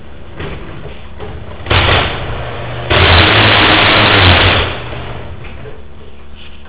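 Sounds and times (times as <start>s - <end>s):
stripped screw drive trolley of garage doors: 1.2s - 5.8s.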